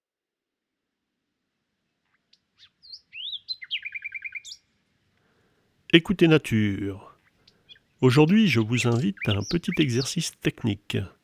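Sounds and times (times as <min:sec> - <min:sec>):
common nightingale song in Crau Bouches-du-Rhône France: 0:02.1 - 0:05.0, 0:05.9 - 0:11.2
speech: 0:05.9 - 0:07.1, 0:08.0 - 0:11.2.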